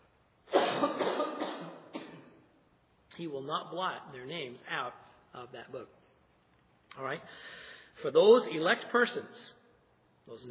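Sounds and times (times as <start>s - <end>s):
person coughing from a tickle in the throat: 0.5s - 2.5s
speech: 3.2s - 6.0s, 6.9s - 9.6s, 10.3s - 10.4s.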